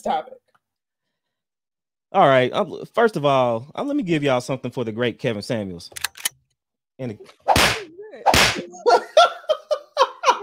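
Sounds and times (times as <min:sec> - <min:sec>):
speech: 0:00.0 - 0:00.4, 0:02.1 - 0:06.3, 0:07.0 - 0:07.8
slap sound effect: 0:07.5 - 0:08.7
laughter: 0:08.6 - 0:10.4.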